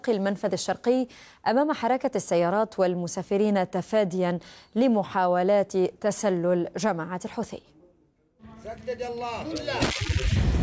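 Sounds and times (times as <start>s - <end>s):
speech: 0.0s - 7.8s, 8.6s - 10.5s
artillery cannon fire booming during clashes on the Jabal Han front west of Taiz: 9.8s - 10.6s.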